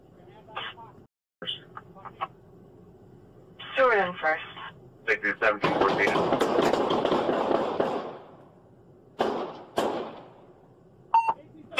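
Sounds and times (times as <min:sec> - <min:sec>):
speech: 0:03.8 - 0:04.5, 0:05.1 - 0:06.5
gunshots during a police street encounter: 0:05.5 - 0:08.4, 0:09.2 - 0:10.4
short electronic beeps: 0:11.1 - 0:11.4.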